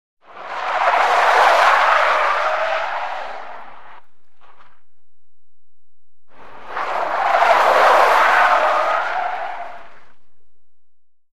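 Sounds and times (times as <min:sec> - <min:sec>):
car wheels during a drift: 0:00.2 - 0:04.9, 0:06.3 - 0:10.5.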